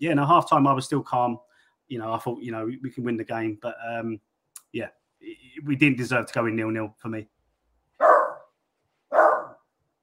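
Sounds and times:
speech: 0:00.0 - 0:07.3
dog barking: 0:08.0 - 0:08.5, 0:09.1 - 0:09.7.

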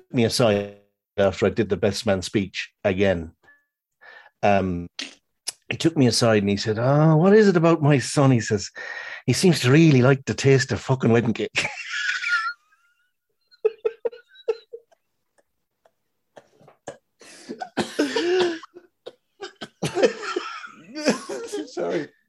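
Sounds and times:
speech: 0:00.1 - 0:03.4, 0:04.4 - 0:11.8, 0:21.8 - 0:22.2
person laughing: 0:13.6 - 0:16.7, 0:17.3 - 0:18.8, 0:19.4 - 0:22.1
person burping: 0:16.4 - 0:18.8
person gasping: 0:16.4 - 0:18.8
person coughing fit: 0:16.4 - 0:22.1.

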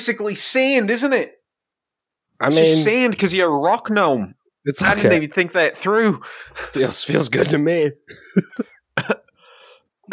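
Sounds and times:
speech: 0:00.0 - 0:01.4, 0:02.4 - 0:09.2
raspy breath: 0:06.2 - 0:06.8, 0:09.4 - 0:10.0
person coughing: 0:08.2 - 0:09.3.

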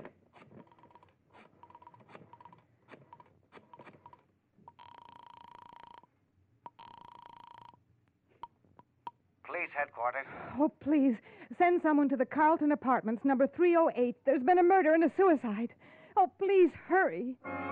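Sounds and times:
telephone being dialed with sharp clicks and brief tones: 0:00.6 - 0:06.0
steady buzzing phone tones: 0:03.7 - 0:06.1, 0:06.7 - 0:07.8
speech: 0:09.6 - 0:15.8, 0:16.4 - 0:17.6.

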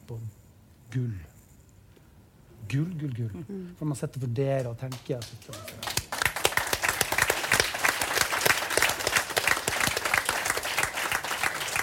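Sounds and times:
speech: 0:00.1 - 0:01.3, 0:02.7 - 0:06.0
audience applause from a crowd: 0:05.5 - 0:11.8.

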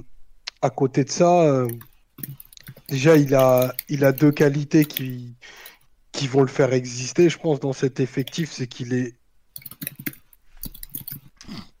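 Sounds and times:
speech: 0:00.6 - 0:09.2
typing on a computer keyboard: 0:01.6 - 0:05.8, 0:08.2 - 0:08.5, 0:09.6 - 0:11.3.

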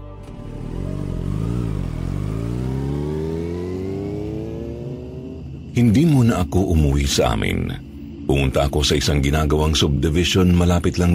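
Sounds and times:
motorcycle engine revving and driving off: 0:00.2 - 0:05.9
speech: 0:05.8 - 0:11.1.

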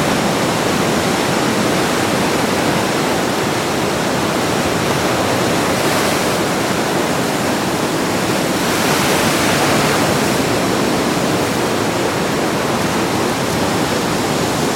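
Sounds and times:
Atlantic ocean waves crashing on old rocks at high tide in a Cornwall cove: 0:00.0 - 0:14.7.

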